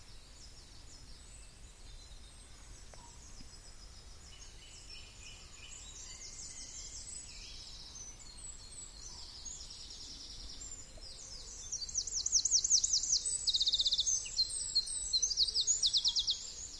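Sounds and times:
blackbirds, wrens, robins and goldcrests singing in a dawn chorus in an oak wood: 0.0s - 16.7s.

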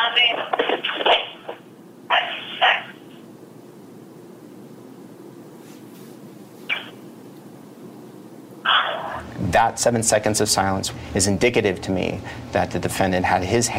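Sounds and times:
hiss: 0.0s - 13.7s
dog barking: 8.7s - 9.2s
speech: 9.5s - 13.7s.

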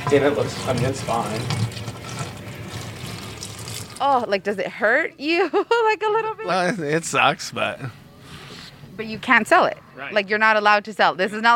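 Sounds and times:
milk pouring into a sink drain in Montana: 0.0s - 4.1s
speech: 0.1s - 1.9s, 4.0s - 8.0s, 9.0s - 11.5s.

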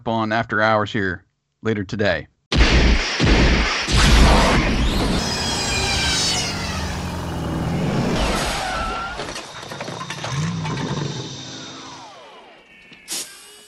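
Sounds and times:
speech: 0.0s - 2.3s
mechanical revving: 3.3s - 12.6s
sci-fi sound effect of a car traveling through time: 4.0s - 12.7s
swirling tones: 4.2s - 12.7s.

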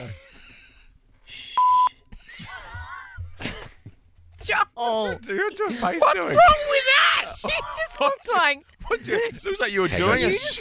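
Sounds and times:
censor beep: 1.6s - 2.1s
speech: 4.8s - 10.5s.

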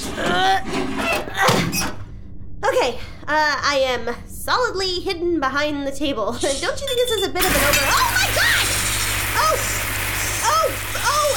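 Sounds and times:
speech: 0.4s - 1.0s, 2.8s - 8.4s
hot water spraying and splashing: 7.4s - 11.3s.

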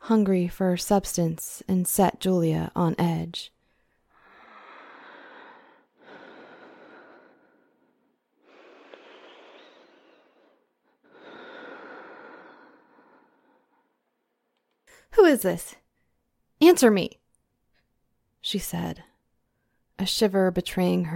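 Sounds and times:
speech: 0.1s - 3.6s, 15.2s - 15.8s, 16.6s - 17.2s, 18.4s - 19.1s, 20.0s - 21.1s
labored heavy breathing over a phone: 3.8s - 13.8s.

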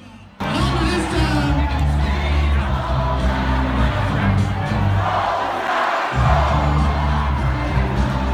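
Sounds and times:
large crowd cheering and whooping at an election call: 0.4s - 8.3s.

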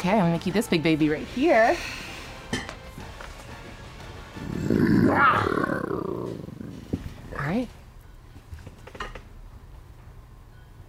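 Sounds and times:
speech: 0.0s - 2.0s, 4.7s - 6.4s, 7.4s - 7.8s
person imitating a dire wolf roar: 4.4s - 6.8s.

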